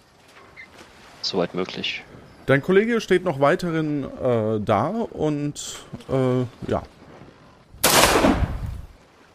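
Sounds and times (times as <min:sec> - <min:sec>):
speech: 0:01.2 - 0:07.0
distant gunshot with tail: 0:07.8 - 0:08.7.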